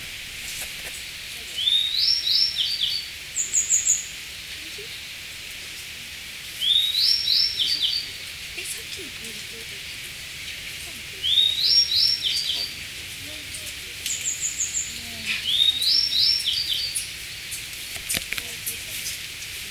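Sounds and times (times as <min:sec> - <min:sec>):
bird song: 0:01.4 - 0:05.2, 0:06.5 - 0:08.8, 0:09.7 - 0:18.6.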